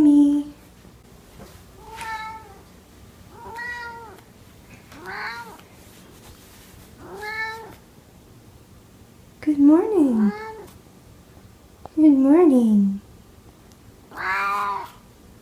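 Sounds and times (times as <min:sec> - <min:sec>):
low hum: 0:00.0 - 0:15.4
cat meowing: 0:01.8 - 0:02.6, 0:03.3 - 0:04.2, 0:05.0 - 0:05.6, 0:07.0 - 0:07.8, 0:10.3 - 0:10.7, 0:14.1 - 0:15.0.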